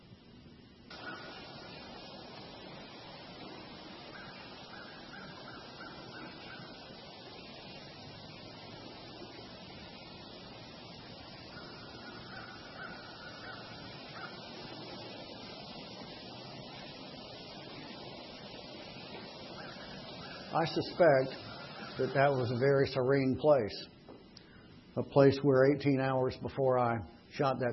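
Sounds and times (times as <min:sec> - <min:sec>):
faint higher sounds: 0:00.9 - 0:23.2
flowing water outdoors: 0:00.9 - 0:24.2
speech: 0:20.6 - 0:21.4, 0:22.0 - 0:23.9, 0:25.0 - 0:27.7.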